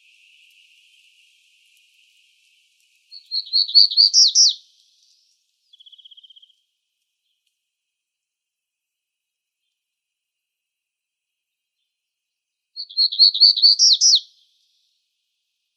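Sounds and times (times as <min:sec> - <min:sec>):
black-throated gray warbler singing in Arizona: 0:00.0 - 0:06.6, 0:11.5 - 0:14.9.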